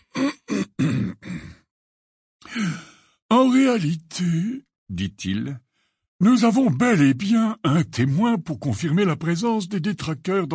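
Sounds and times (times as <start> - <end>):
throat clearing: 0.0 - 1.7
speech: 3.5 - 10.5.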